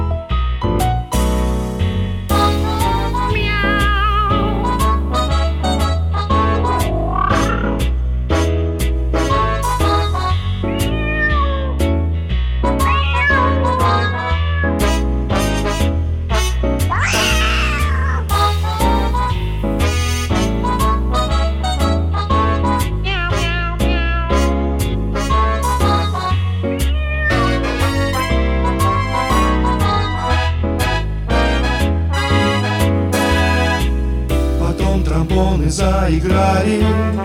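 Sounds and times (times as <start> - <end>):
jazzy music with thumping bass and drums: 0.0 - 37.2
cats meowing and caterwauling: 3.3 - 4.8, 10.8 - 11.8, 12.8 - 14.8, 16.9 - 18.3, 23.0 - 24.5, 26.8 - 28.0.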